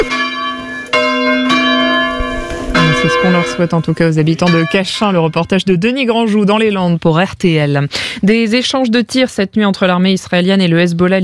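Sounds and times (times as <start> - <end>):
bells of a small village church in the Landes in France ringing: 0.0 - 5.6
speech: 3.0 - 11.2.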